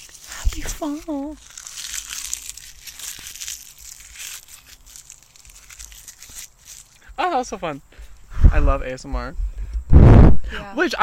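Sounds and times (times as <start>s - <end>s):
dry autumn leaves crunching and crackling: 0.0s - 7.1s
speech: 0.6s - 1.6s, 7.2s - 9.5s, 10.5s - 11.0s.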